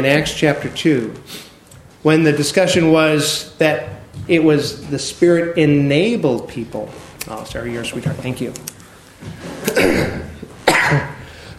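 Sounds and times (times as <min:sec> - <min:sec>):
speech: 0:00.0 - 0:10.3, 0:10.9 - 0:11.1
harsh chesty coughs: 0:09.6 - 0:11.5.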